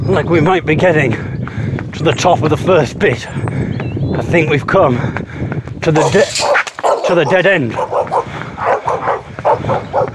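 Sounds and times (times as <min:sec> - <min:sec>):
speech: 0:00.1 - 0:01.3, 0:02.0 - 0:03.5, 0:04.1 - 0:05.2, 0:05.9 - 0:08.0
dog barking: 0:06.4 - 0:10.1.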